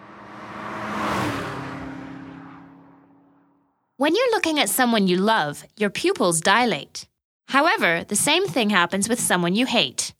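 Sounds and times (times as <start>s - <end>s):
single car driving past on a road: 0.0s - 3.9s
speech: 4.0s - 10.1s.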